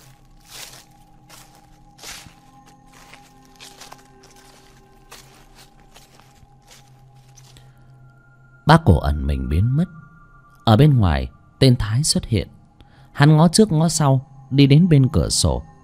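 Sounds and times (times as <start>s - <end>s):
footsteps rustling and crunching on rotten twigs and leaves: 0.0s - 7.8s
speech: 8.7s - 10.0s, 10.7s - 12.6s, 13.2s - 15.7s.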